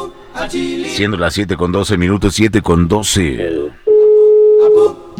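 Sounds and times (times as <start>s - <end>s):
speech: 0.4s - 3.8s
telephone ringback tone from an outgoing call: 3.9s - 5.0s.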